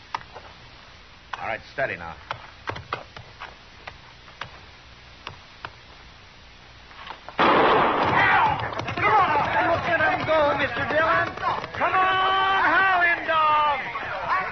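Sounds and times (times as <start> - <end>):
speech: 1.5 - 2.4
single gunshot fired to start a horse race: 7.4 - 8.7
crowd roaring at a horse race: 8.0 - 14.4.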